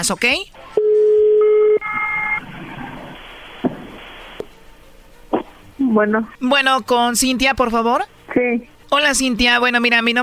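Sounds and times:
speech: 0.0s - 0.7s, 5.9s - 10.2s
telephone line noise: 0.8s - 3.5s.

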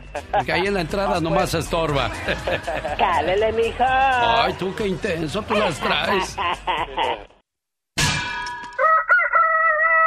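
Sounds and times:
speech: 0.2s - 7.3s
laughter: 2.0s - 3.3s, 5.5s - 7.4s
rooster crowing: 8.8s - 10.0s.

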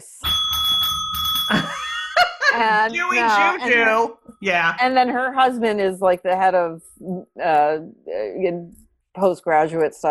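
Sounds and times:
bright bell ringing with a sustained metallic tone: 0.2s - 4.0s
laughter: 1.5s - 4.7s
speech: 2.6s - 10.0s.

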